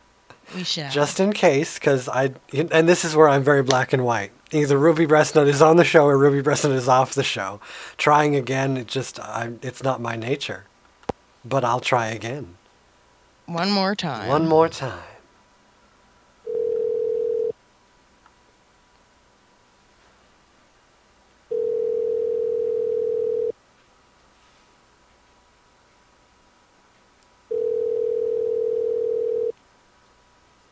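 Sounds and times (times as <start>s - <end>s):
speech: 0.6s - 10.7s, 11.4s - 12.6s, 13.5s - 15.1s
telephone ringback tone over the line: 16.5s - 17.5s, 21.5s - 23.5s, 27.5s - 29.5s.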